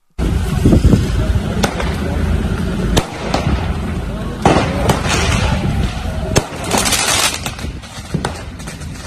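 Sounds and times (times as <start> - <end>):
fireworks bangs and crackles during street disturbances: 0.2 - 9.0
roar of an outdoor crowd: 3.4 - 7.1.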